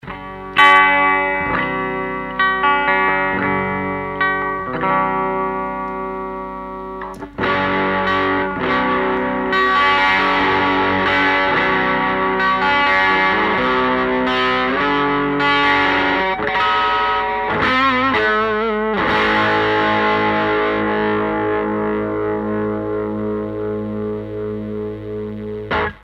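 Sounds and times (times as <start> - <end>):
crunch tone guitar through a Vox AC30 amplifier: 0.0 - 26.0.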